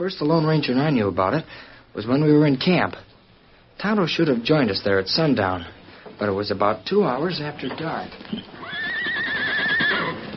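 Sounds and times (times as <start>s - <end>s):
speech: 0.0s - 3.1s, 3.8s - 8.8s
horse hooves clip-clopping: 7.3s - 10.3s
horse whinnying: 8.2s - 10.3s.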